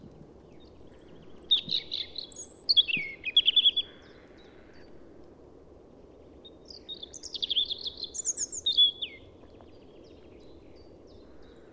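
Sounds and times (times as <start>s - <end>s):
European robin Erithacus rubecula singing: 0.5s - 4.2s, 6.4s - 11.6s.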